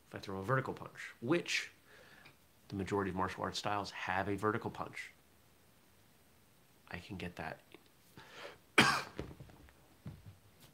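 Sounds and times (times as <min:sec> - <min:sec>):
speech: 0:00.2 - 0:01.8, 0:02.7 - 0:05.2, 0:06.9 - 0:07.7
single sharp loud cough: 0:08.8 - 0:09.3.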